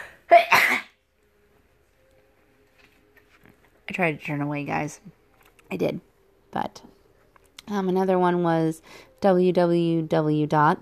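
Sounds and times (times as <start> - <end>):
loud sneeze: 0.3 - 0.9
speech: 3.9 - 7.0, 7.7 - 10.8.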